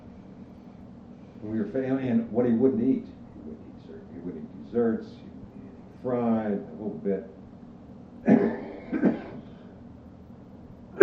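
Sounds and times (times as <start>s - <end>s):
speech: 1.4s - 3.6s, 4.2s - 5.2s, 6.0s - 7.4s
harsh coughs: 8.2s - 9.6s.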